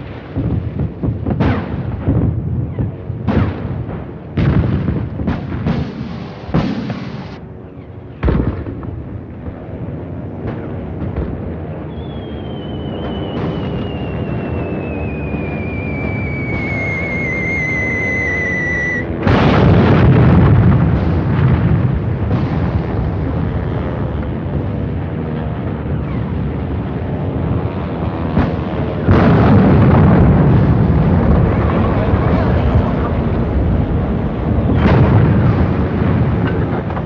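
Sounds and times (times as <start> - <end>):
bombs exploding during a WWII Blitz air raid on London: 0.0 - 7.5, 8.2 - 37.0
deep lingering rumble after a bomb explosion: 0.0 - 37.0
falling bomb whistle during a WWII Blitz air raid on London: 11.8 - 19.2.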